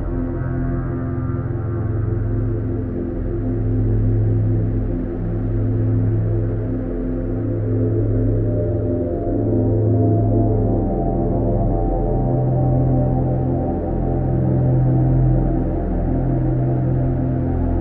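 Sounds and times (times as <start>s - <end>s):
steady low tonal drone with layered humming tones at 285 Hz: 0.0s - 17.7s.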